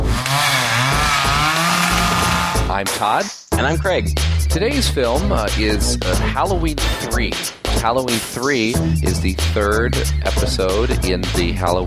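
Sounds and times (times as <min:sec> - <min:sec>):
chainsaw revving: 0:00.0 - 0:02.8
speech: 0:02.8 - 0:11.8.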